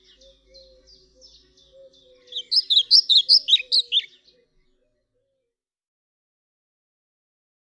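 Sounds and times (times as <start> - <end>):
European pied flycatcher song: 0.0 - 5.0.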